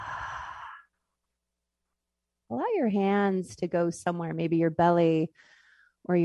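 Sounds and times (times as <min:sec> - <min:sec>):
long breathy exhale during a guided deep-breathing exercise: 0:00.0 - 0:00.9
speech: 0:02.5 - 0:06.2.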